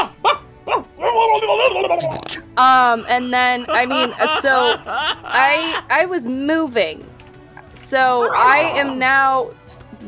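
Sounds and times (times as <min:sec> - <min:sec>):
speech: 0:01.4 - 0:07.1, 0:07.8 - 0:09.6
voice imitating bottlenose dolphin noises: 0:01.6 - 0:05.6
laughter: 0:02.2 - 0:06.5.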